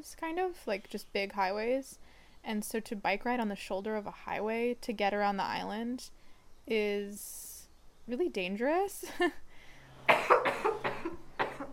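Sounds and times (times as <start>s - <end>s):
speech: 0.0s - 7.5s, 8.1s - 9.4s
raspy coughing: 10.1s - 11.7s.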